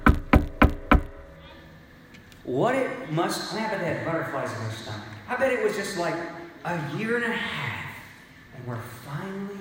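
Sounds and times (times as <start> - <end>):
firm knocking on a door: 0.0 - 1.2
speech: 2.5 - 7.7, 8.7 - 9.5.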